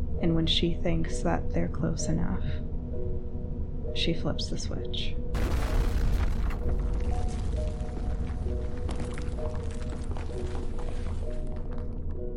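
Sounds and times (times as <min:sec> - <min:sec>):
speech: 0:00.2 - 0:02.7, 0:03.9 - 0:05.6
loud deep explosion rumbling: 0:05.4 - 0:11.2
crackling debris: 0:05.4 - 0:12.2.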